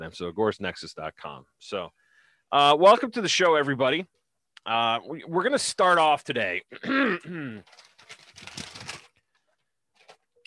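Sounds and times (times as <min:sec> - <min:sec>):
speech: 0:00.0 - 0:08.5
single piece of paper being handled and rustled: 0:07.6 - 0:10.4.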